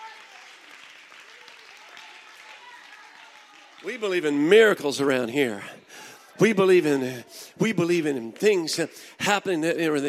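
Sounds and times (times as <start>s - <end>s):
congregation clapping: 0.0s - 5.2s, 7.9s - 9.1s
speech: 3.8s - 5.8s, 6.4s - 10.0s.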